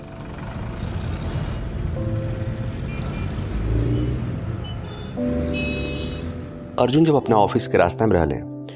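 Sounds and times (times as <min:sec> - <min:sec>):
car engine rumbling and revving while driven to the office: 0:00.0 - 0:06.7
speech: 0:06.8 - 0:08.5.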